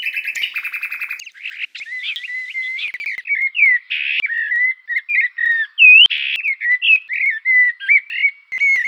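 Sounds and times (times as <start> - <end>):
bird song with whistled notes: 0.0 - 8.8.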